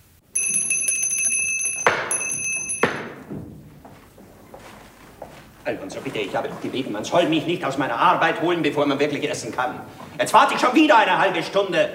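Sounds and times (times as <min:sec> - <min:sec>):
hand bell rung to summon a servant: 0:00.4 - 0:03.2
speech: 0:05.6 - 0:11.9.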